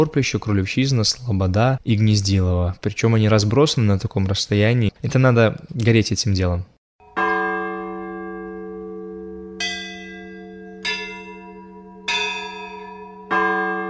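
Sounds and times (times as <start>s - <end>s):
speech: 0.0s - 6.8s
church bells ringing in Porpishche: 7.0s - 13.8s.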